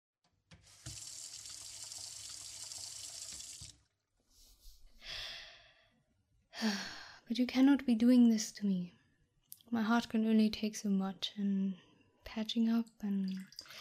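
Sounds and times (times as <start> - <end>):
warm water running into a sink: 0.5 - 3.9
speech: 6.6 - 9.0, 9.7 - 13.6.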